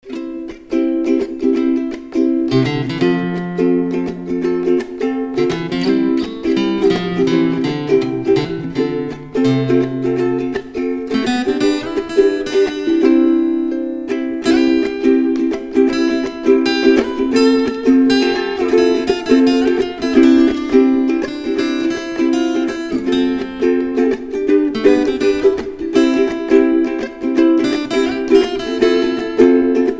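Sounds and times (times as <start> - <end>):
guitar: 0.0 - 29.9
ukulele: 0.0 - 29.9.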